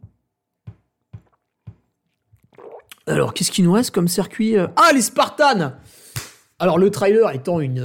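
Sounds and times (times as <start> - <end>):
person taking a drink with soft gulping swallows: 1.0 - 3.4
speech: 3.1 - 6.0, 6.6 - 7.8.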